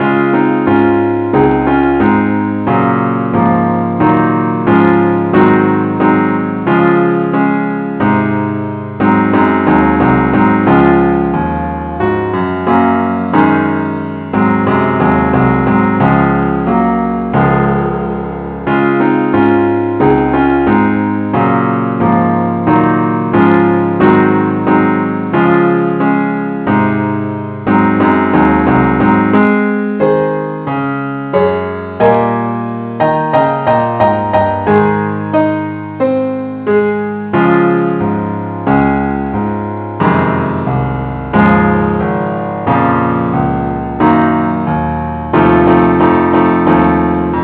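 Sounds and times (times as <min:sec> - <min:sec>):
keyboard: 0:00.0 - 0:47.4.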